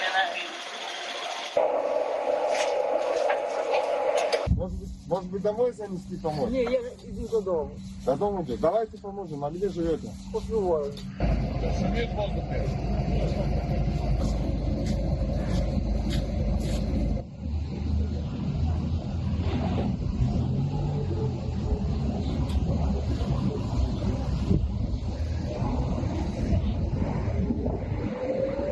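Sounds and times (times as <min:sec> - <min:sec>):
vehicle engine and road rumble while fleeing gunfire: 0:00.0 - 0:28.6
speech: 0:01.6 - 0:02.6, 0:04.7 - 0:15.1
wind buffeting a moving vehicle: 0:01.6 - 0:28.6.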